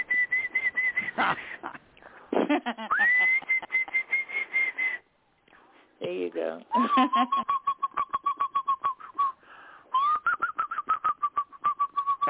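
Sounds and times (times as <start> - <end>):
person whistling an imitation of a canary song: 0.0 - 1.2, 3.0 - 5.0, 7.1 - 12.2
speech: 1.2 - 1.8, 2.5 - 3.4, 6.1 - 7.6.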